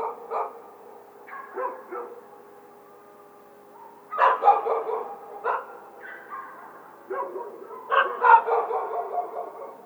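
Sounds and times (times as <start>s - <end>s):
coyote yipping and howling: 3.8s - 9.8s.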